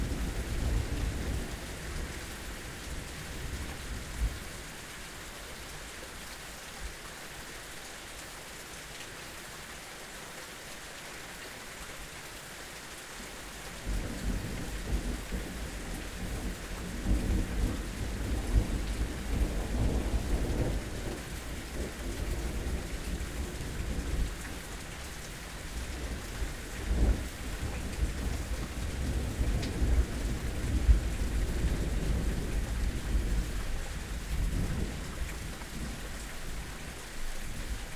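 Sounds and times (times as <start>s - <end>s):
steady dense rain hissing: 0.0s - 37.9s
deep rumble of thunder rolling low with louder cracks: 13.9s - 24.6s, 25.9s - 36.0s.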